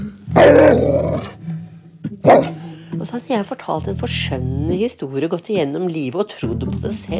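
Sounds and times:
dog snarling growl: 0:00.0 - 0:01.4, 0:02.2 - 0:02.8
dog barking: 0:02.2 - 0:02.6
speech: 0:03.0 - 0:07.1.

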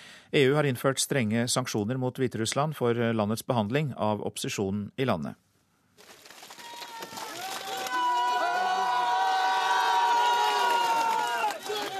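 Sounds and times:
speech: 0:00.3 - 0:05.5
large crowd cheering outside a railway station at night: 0:06.4 - 0:11.9.

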